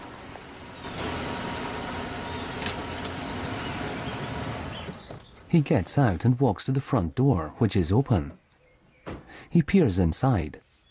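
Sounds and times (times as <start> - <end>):
sheriff's car engine rumble pulling up at a cabin among autumn trees: 0.0 - 5.6
speech: 5.5 - 8.4, 9.5 - 10.6.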